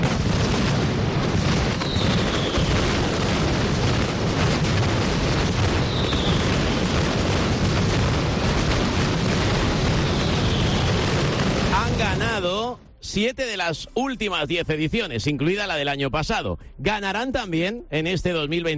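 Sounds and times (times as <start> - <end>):
mascletà firecracker barrage final shot at the Plaza de los Luceros: 0.0 - 12.8
speech: 13.2 - 18.7.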